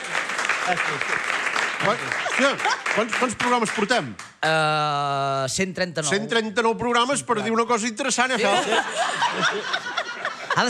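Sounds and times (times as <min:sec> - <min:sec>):
people clapping: 0:00.0 - 0:04.6
speech: 0:00.7 - 0:10.6
laughter: 0:01.8 - 0:03.1, 0:08.3 - 0:10.6.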